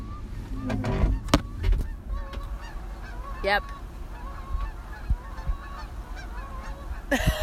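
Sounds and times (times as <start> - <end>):
large flock of about 10,000 geese honking: 0.0 - 7.4
speech: 3.4 - 3.8.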